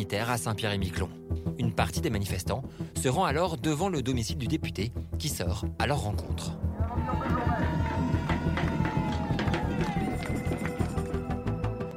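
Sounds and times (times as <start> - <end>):
speech: 0.0 - 8.8
rowdy outdoor protest crowd jeering and shouting: 6.7 - 11.4
drums beating: 6.8 - 11.2.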